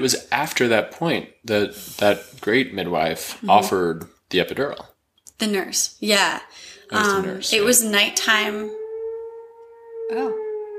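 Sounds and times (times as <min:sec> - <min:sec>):
speech: 0:00.0 - 0:08.8, 0:10.1 - 0:10.4
civil defense siren wailing: 0:06.6 - 0:10.7.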